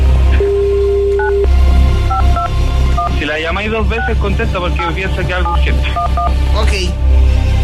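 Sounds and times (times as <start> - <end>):
steady telephone tone: 0.4 - 1.5, 2.1 - 3.2
telephone keypad beeps: 2.1 - 3.2, 5.4 - 6.3
speech: 3.8 - 7.1.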